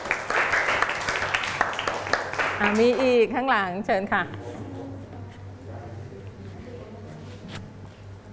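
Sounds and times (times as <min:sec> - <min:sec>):
roomful of people clapping in a classroom: 0:00.0 - 0:03.3
speech: 0:02.6 - 0:04.5.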